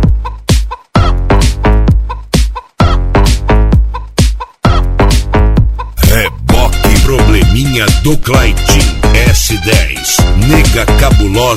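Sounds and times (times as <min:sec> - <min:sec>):
chicken clucking and squawking: 0:00.1 - 0:01.1, 0:01.9 - 0:03.0, 0:03.7 - 0:04.9, 0:05.6 - 0:06.1
deep bass thump: 0:05.3 - 0:07.6
speech: 0:08.1 - 0:11.5.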